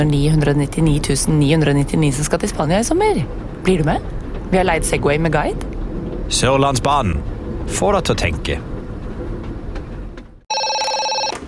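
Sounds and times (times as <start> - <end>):
speech: 0.0 - 5.7, 6.3 - 8.7
noisy rumble: 0.0 - 10.4
telephone ringing: 10.5 - 11.4.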